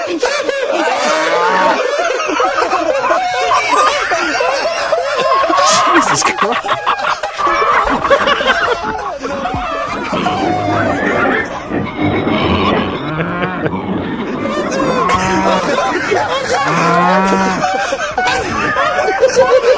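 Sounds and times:
laughter: 0.0 - 19.7
scattered fowl calls: 0.2 - 19.6
horse whinnies: 9.8 - 15.8
cattle mooing loudly: 10.1 - 16.0, 16.6 - 17.7.

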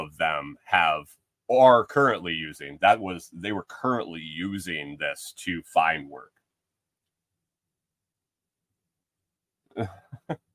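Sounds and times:
speech: 0.0 - 6.4, 9.8 - 10.5
person clearing their throat: 9.8 - 10.2.

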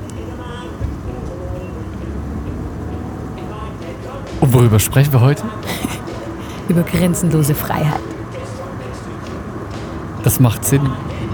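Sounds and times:
faint voices murmuring: 0.0 - 11.3
road and engine rumble inside a moving car: 0.0 - 11.3
laughter: 2.9 - 11.3
speech: 4.4 - 6.0, 6.7 - 8.0, 10.2 - 11.2.

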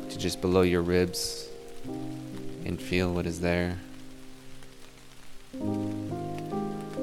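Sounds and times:
gentle rain pattering: 0.0 - 7.0
speech: 0.1 - 3.9, 5.5 - 5.8.

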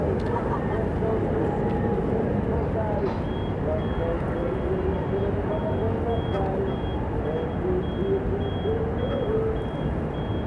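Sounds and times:
funfair crowd and machinery rumble across a lake: 0.0 - 10.3.

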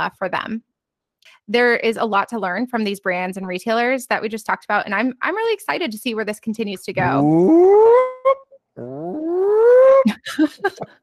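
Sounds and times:
speech: 0.0 - 8.1, 8.8 - 9.2, 10.0 - 11.0
voice imitating a siren: 7.0 - 10.1
laughter: 10.1 - 10.9.

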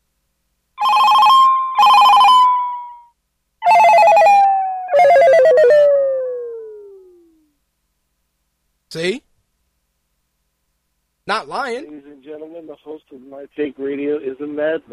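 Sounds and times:
phone ringtone: 0.8 - 5.9
speech: 8.9 - 9.3, 11.3 - 14.9.

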